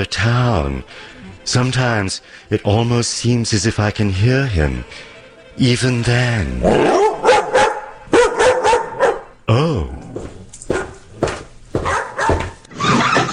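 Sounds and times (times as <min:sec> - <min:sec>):
speech: 0:00.0 - 0:07.2
dog barking: 0:06.7 - 0:09.4, 0:10.7 - 0:11.1, 0:11.8 - 0:12.6.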